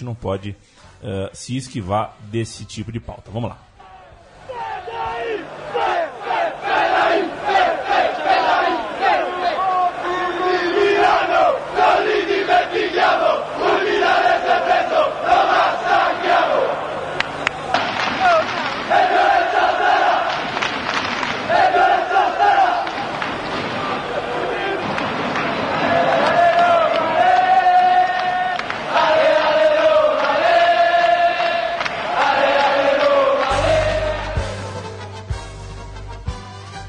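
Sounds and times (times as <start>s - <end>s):
speech: 0.0s - 3.7s
stadium crowd of football supporters chanting in unison: 3.8s - 17.2s, 18.1s - 23.2s, 23.8s - 34.7s.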